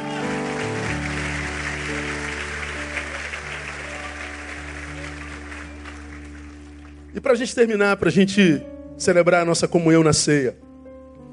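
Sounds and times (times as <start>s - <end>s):
large audience applauding: 0.0s - 7.5s
sustained keyboard chords: 0.0s - 11.3s
speech: 7.2s - 10.7s.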